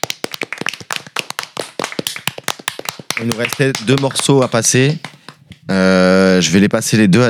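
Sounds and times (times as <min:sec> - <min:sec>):
small group seated around a table clapping: 0:00.0 - 0:05.7
speech: 0:03.2 - 0:05.1, 0:05.7 - 0:07.2.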